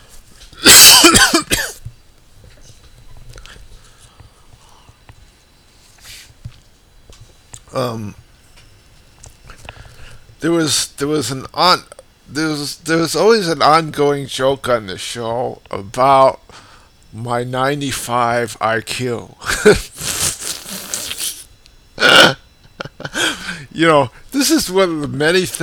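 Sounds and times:
harsh strained coughing: 0.6s - 1.8s, 22.0s - 22.4s
speech: 7.8s - 8.2s, 10.4s - 16.4s, 17.2s - 19.9s, 23.8s - 25.6s
throat noises: 19.9s - 22.4s.

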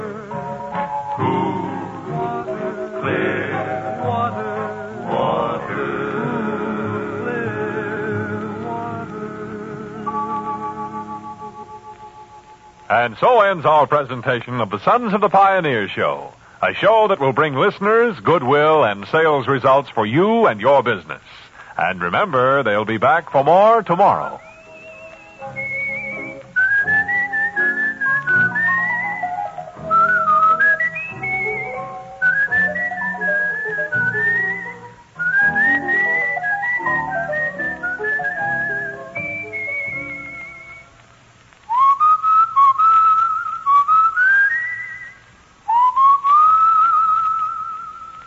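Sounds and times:
soft instrumental backing music: 0.0s - 13.0s, 24.1s - 41.1s
speech: 13.0s - 24.4s
person whistling a bright lilting melody: 24.2s - 41.0s, 41.7s - 48.2s.

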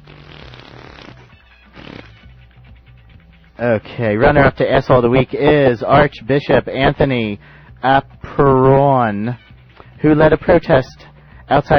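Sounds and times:
loud long rumbling fart sound effect: 0.0s - 2.3s
speech: 3.6s - 9.4s, 10.0s - 11.7s.

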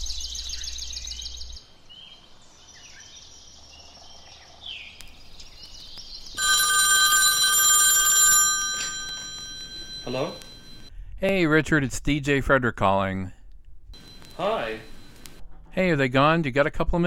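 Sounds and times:
telephone ringing in short warbling bursts during an outgoing call: 6.4s - 10.9s, 14.0s - 15.5s
speech: 10.1s - 10.4s, 11.2s - 13.4s, 14.4s - 14.9s, 15.8s - 17.0s.

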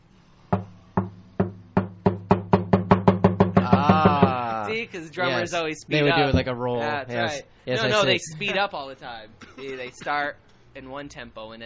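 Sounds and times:
knocking on a door: 0.5s - 4.4s
speech: 4.9s - 11.6s.

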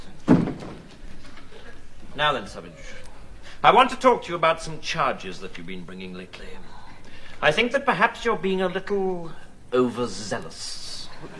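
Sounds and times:
door shutting with a solid thud: 0.2s - 1.0s
speech: 2.2s - 6.8s, 7.4s - 11.3s.

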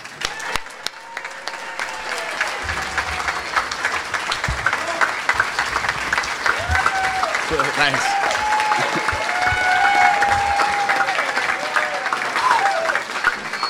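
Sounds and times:
large audience applauding: 0.0s - 13.6s
audience cheers and whoops: 0.2s - 13.6s
laughter: 0.4s - 13.5s
speech: 7.8s - 8.2s.

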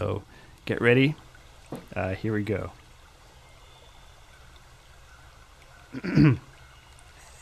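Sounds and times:
speech: 0.0s - 1.2s, 2.0s - 2.8s, 5.9s - 6.5s
throat clearing: 6.0s - 6.4s.

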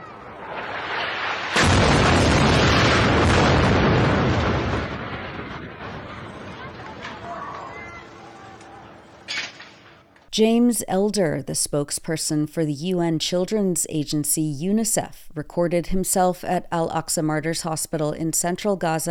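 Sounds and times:
bomb explosion hitting residential tower: 0.0s - 8.2s
lingering low wash of debris: 0.0s - 10.3s
speech: 10.4s - 19.1s.

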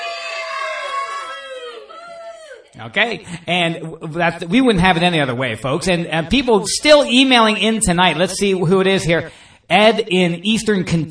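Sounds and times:
shrill drawn-out scream: 0.0s - 2.8s
speech: 2.8s - 11.0s.

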